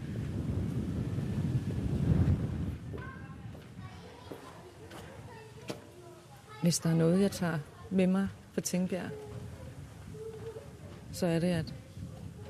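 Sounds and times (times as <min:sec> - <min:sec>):
strong wind buffeting the microphone by a high-rise in Tingbjerg: 0:00.0 - 0:04.1, 0:09.0 - 0:12.4
speech: 0:06.6 - 0:09.3, 0:11.2 - 0:11.8.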